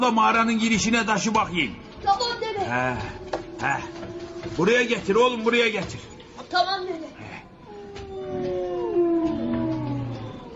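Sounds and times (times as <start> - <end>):
speech: 0.0 - 7.4
hungry pack of animals howling outside a cave in winter: 2.4 - 5.7, 7.2 - 10.5.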